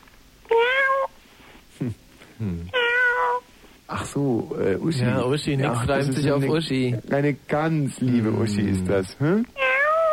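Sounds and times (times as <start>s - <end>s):
cat meowing: 0.5s - 1.1s, 2.7s - 3.5s, 9.6s - 10.1s
speech: 1.8s - 2.7s, 4.2s - 9.6s.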